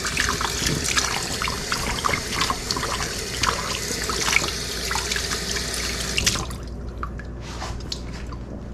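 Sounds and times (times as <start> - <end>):
water pouring into a container: 0.0 - 7.0
water dripping: 0.0 - 8.6.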